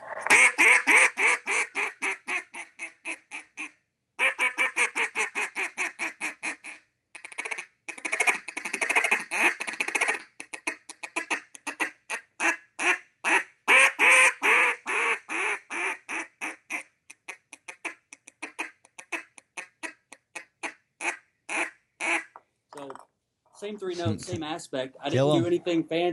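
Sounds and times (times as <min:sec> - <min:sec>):
duck call quacks: 0:00.2 - 0:22.3
speech: 0:23.7 - 0:26.1.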